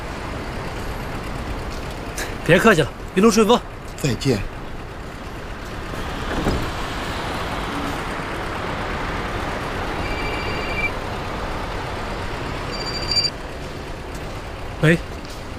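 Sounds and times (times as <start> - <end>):
train moving through a station: 0.0 - 15.5
speech: 2.2 - 4.5, 14.8 - 15.1
high-pitched tone: 9.9 - 11.0, 12.7 - 13.3
whistle-like beeps: 10.0 - 10.9, 12.7 - 13.3.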